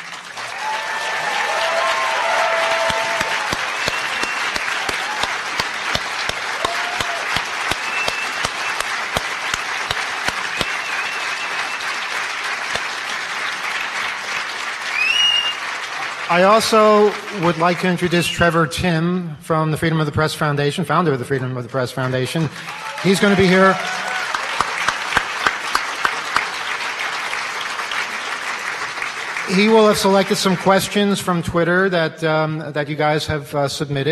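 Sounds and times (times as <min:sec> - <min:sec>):
audience applause from a large crowd: 0:00.0 - 0:18.6, 0:22.0 - 0:31.4
faint whistles: 0:03.8 - 0:04.5, 0:07.8 - 0:08.9, 0:10.5 - 0:11.9, 0:14.9 - 0:15.6
speech: 0:16.3 - 0:24.0, 0:29.6 - 0:34.1.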